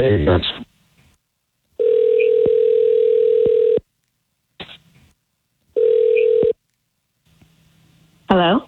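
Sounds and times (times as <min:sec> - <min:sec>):
speech: 0:00.0 - 0:00.6
telephone dial tone: 0:01.8 - 0:03.8, 0:05.8 - 0:06.6.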